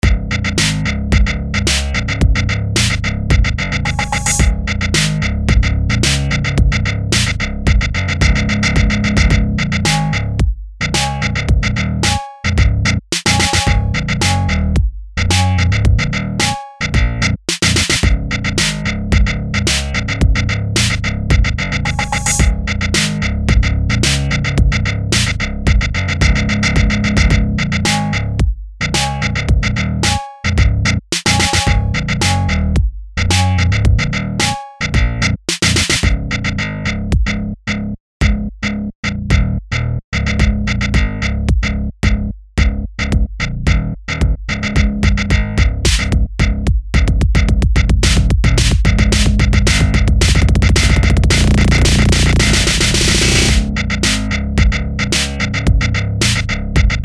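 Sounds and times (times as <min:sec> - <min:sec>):
bass guitar: 0:00.0 - 0:57.0.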